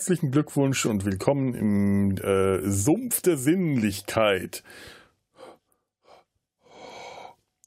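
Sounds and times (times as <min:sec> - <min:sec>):
speech: 0:00.0 - 0:05.0
deep heavy breathing into the microphone: 0:04.6 - 0:07.4.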